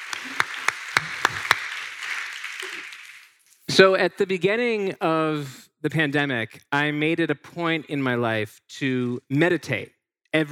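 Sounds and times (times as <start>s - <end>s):
audience applause in a room: 0.0s - 3.4s
sharp claps: 0.0s - 3.4s
speech: 3.8s - 10.5s.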